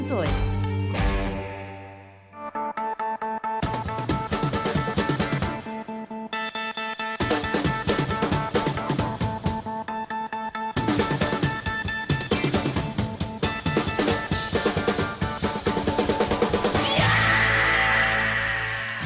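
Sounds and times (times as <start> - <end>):
driving rhythmic music: 0.0 - 19.0
speech: 0.1 - 0.6
loud sustained high-pitched scream: 16.7 - 19.0.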